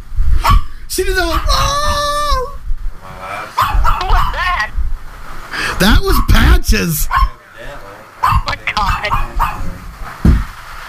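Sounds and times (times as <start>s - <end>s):
dog barking: 0.4s - 1.7s, 3.6s - 4.5s, 7.1s - 7.4s, 8.2s - 9.7s
speech: 0.9s - 2.0s, 5.8s - 7.4s.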